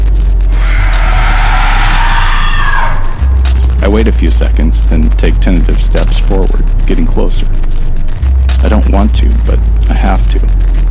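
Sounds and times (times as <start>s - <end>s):
low rumbling bed: 0.0s - 10.8s
creature strangled shrill screech: 0.5s - 3.2s
speech: 3.9s - 7.8s, 8.6s - 10.7s.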